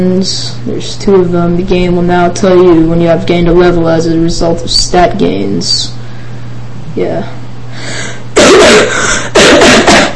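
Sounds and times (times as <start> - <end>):
speech: 0.0 - 6.0, 7.0 - 10.0
harsh coughs from a sick person: 8.3 - 10.1.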